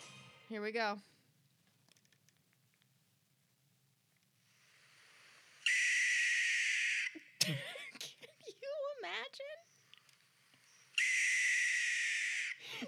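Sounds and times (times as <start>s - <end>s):
owl giving harsh hissing screeches: 5.6s - 7.3s, 10.7s - 12.6s
person talking: 8.2s - 9.6s.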